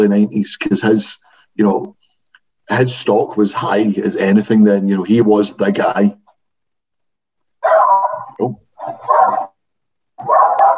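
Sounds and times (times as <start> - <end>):
speech: 0.0 - 2.0, 2.7 - 6.2, 8.4 - 9.3
dog barking: 7.6 - 9.6, 10.2 - 10.7.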